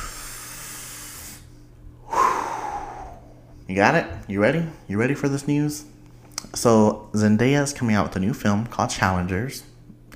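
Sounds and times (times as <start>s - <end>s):
deep breath: 0.0s - 3.7s
speech: 3.7s - 5.9s, 6.5s - 9.7s.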